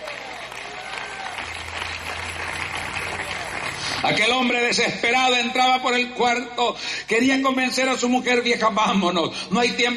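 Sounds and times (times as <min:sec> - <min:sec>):
church audience applauding: 0:00.0 - 0:04.6
speech: 0:04.0 - 0:09.9.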